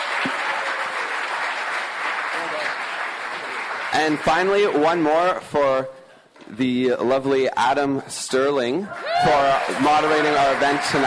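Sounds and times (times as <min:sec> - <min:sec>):
crowd applauding loudly: 0:00.0 - 0:05.0, 0:08.8 - 0:11.0
speech: 0:04.0 - 0:11.0.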